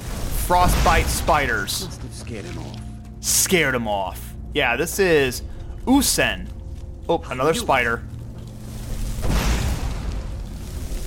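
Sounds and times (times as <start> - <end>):
fire bolt spell exploding in a fantasy video game: 0.0 - 1.7, 9.2 - 11.0
speech: 0.5 - 6.5, 7.1 - 8.1.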